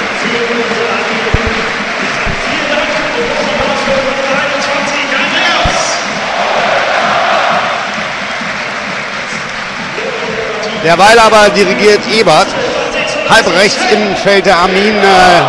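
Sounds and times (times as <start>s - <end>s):
large stadium crowd applauding a substituted player: 0.0s - 15.4s
low thumps: 1.2s - 4.9s, 5.6s - 6.2s
speech: 10.8s - 12.6s, 13.3s - 15.4s.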